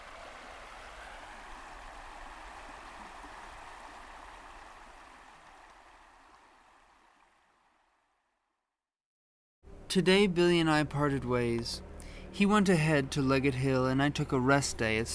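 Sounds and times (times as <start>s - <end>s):
river water flowing beside a hiker-biker campsite: 0.0s - 8.0s
speech: 9.9s - 15.1s.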